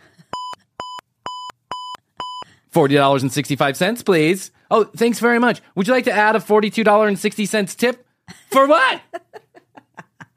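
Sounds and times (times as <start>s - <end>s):
checkout scanner beeping: 0.4s - 2.4s
speech: 2.8s - 9.2s
laughter: 8.3s - 10.3s.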